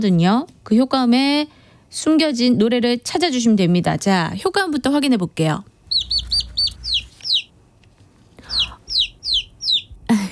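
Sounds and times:
speech: 0.0 - 6.1
baby chicks peeping in shrill chirps: 5.9 - 7.6, 8.4 - 10.1.

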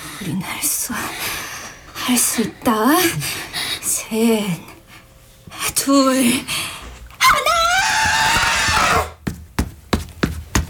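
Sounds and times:
speech: 0.2 - 1.3, 2.1 - 3.5, 4.1 - 4.7, 5.8 - 6.6
person yelling a battle cry while charging forward: 7.1 - 9.1.

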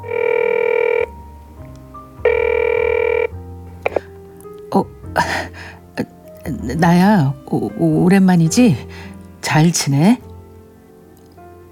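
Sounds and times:
long ringback tones on an outgoing phone call: 0.0 - 1.1, 2.2 - 4.1
speech: 4.7 - 4.9, 6.7 - 10.2.

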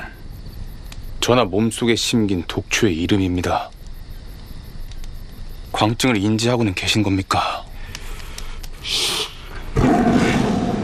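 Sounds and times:
speech: 1.3 - 3.8, 5.8 - 7.6, 8.8 - 9.1
tiger roar: 9.7 - 10.8.

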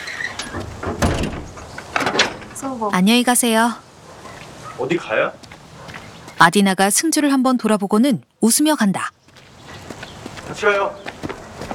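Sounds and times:
house front gate being opened with clattering knocks and scraping: 0.0 - 2.8
speech: 2.6 - 3.9, 4.8 - 5.4, 6.4 - 9.2, 10.5 - 11.1.

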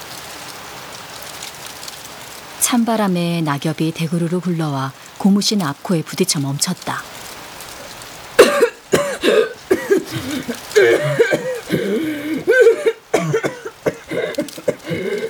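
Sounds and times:
speech: 2.7 - 7.2, 10.4 - 12.1
person coughing: 8.4 - 15.2
throat-clearing: 8.4 - 15.2.

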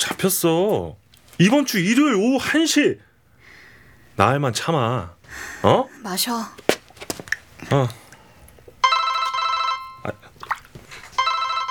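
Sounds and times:
speech: 0.2 - 3.1, 4.2 - 6.7, 7.7 - 8.0
phone ringing with electronic buzzing ringtone: 8.8 - 10.2, 11.2 - 11.7.

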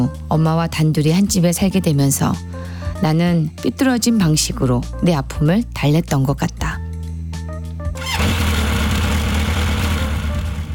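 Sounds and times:
speech: 0.0 - 6.8
motorcycle engine starting and revving: 8.0 - 10.7.

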